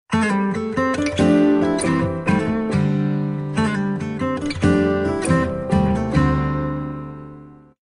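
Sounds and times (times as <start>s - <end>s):
standard HTC text message tone on guitar: 0.1s - 7.4s.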